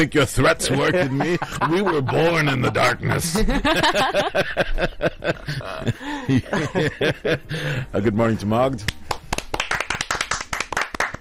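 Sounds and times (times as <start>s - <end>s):
speech: 0.0s - 9.0s
laughter: 0.4s - 7.7s
small group hand clapping: 8.7s - 11.1s.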